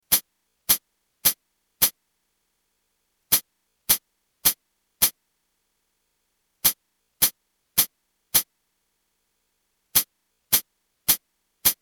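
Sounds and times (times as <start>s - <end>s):
pedal hi-hat: 0.1s - 2.0s, 3.3s - 5.2s, 6.6s - 8.5s, 10.0s - 11.8s.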